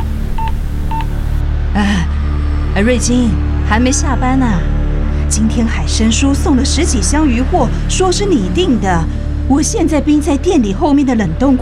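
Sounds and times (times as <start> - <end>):
telephone keypad tones: 0.0 - 1.2
steady low hum: 0.0 - 11.6
speech: 2.8 - 11.6.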